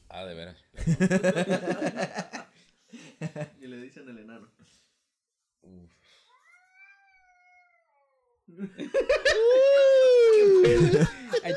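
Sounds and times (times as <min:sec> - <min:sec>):
speech: 0:00.2 - 0:02.4, 0:08.6 - 0:09.8
short bursts of human laughter: 0:00.8 - 0:03.6, 0:08.6 - 0:11.5
long drawn-out cat meow: 0:06.4 - 0:08.3.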